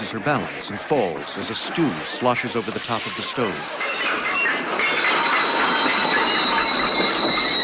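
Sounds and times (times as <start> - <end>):
train rolling with rumble and clatter: 0.0 - 7.6
speech: 0.1 - 4.9
thin high metallic squeal of train braking wheels: 3.8 - 7.6.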